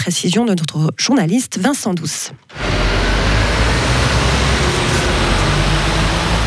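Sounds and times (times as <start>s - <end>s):
speech: 0.0s - 2.9s
combustion-engine buses engine rumble: 2.5s - 6.4s
road traffic noise: 2.5s - 6.4s.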